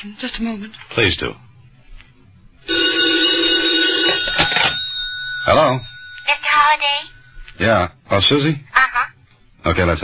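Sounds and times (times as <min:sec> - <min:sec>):
speech: 0:00.0 - 0:01.5, 0:05.5 - 0:08.7, 0:09.6 - 0:10.0
telephone bell ringing with a bright metallic ring: 0:02.6 - 0:07.5.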